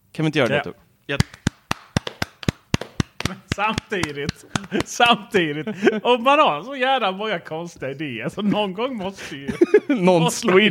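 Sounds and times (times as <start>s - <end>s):
speech: 0.2s - 1.4s, 3.3s - 10.6s
a few people clapping hands: 1.2s - 5.3s
laughter: 3.6s - 6.6s, 8.4s - 10.6s.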